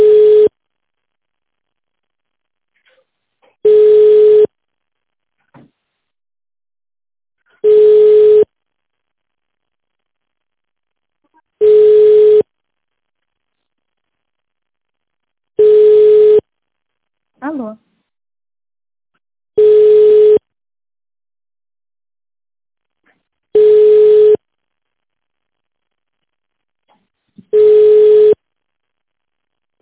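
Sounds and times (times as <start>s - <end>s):
telephone line tone beeps while a caller waits on hold: 0.0s - 0.5s, 3.6s - 4.5s, 7.6s - 8.5s, 11.6s - 12.4s, 15.6s - 16.4s, 19.6s - 20.4s, 23.6s - 24.4s, 27.6s - 28.4s.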